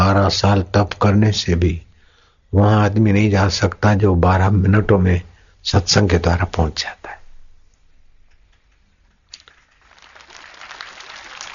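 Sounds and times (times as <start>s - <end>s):
speech: 0.3s - 1.9s, 2.5s - 7.2s
audience clapping at a satsang: 9.3s - 11.5s.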